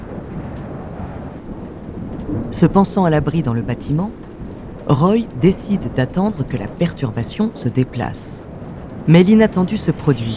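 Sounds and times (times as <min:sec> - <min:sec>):
deep continuous rumble of thunder: 0:00.0 - 0:10.3
gusting wind rushing into a tower: 0:00.0 - 0:10.3
heavy pouring rain during a storm: 0:00.0 - 0:10.3
speech: 0:02.3 - 0:04.2, 0:04.9 - 0:10.3.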